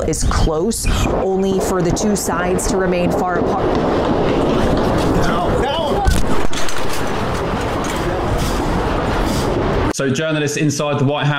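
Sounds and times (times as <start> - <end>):
speech: 0.0 - 4.9, 10.0 - 11.3
indistinct voices: 0.0 - 9.3
outdoor rumble: 0.0 - 9.9
gunshots: 2.6 - 9.9.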